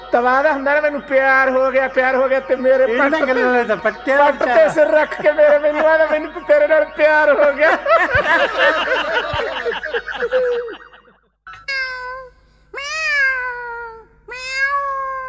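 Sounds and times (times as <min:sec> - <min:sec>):
speech: 0:00.1 - 0:10.8
laughter: 0:00.1 - 0:11.2
cat meowing: 0:11.6 - 0:15.2.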